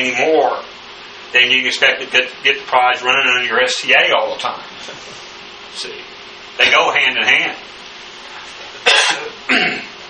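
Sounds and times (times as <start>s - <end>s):
speech: 0.0s - 0.7s, 1.3s - 7.7s, 9.0s - 9.9s
person coughing: 8.8s - 10.0s.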